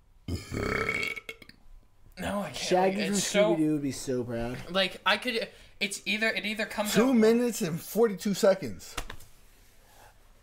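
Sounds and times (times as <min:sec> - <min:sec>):
loud drawn-out burp: 0:00.2 - 0:01.6
speech: 0:02.7 - 0:09.0.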